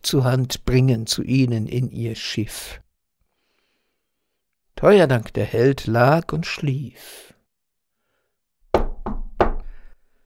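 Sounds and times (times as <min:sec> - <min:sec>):
speech: 0:00.1 - 0:02.8, 0:04.8 - 0:07.3
firm knocking on a door: 0:08.7 - 0:09.8.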